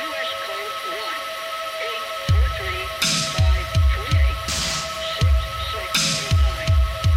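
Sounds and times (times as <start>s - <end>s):
song with humming over a pulsing beat: 0.0s - 7.1s
low thumping beat: 2.2s - 7.1s.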